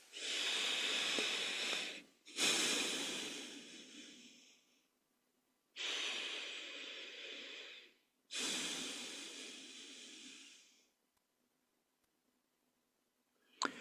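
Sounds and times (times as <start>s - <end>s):
slow deep breaths during a guided relaxation exercise: 0.0s - 4.9s, 5.8s - 11.0s.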